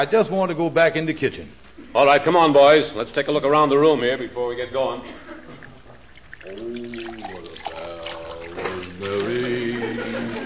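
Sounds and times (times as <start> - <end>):
speech: 0.0 - 5.3, 6.4 - 7.7
water pouring into a glass over ice: 6.0 - 9.4
laughter: 8.6 - 10.4.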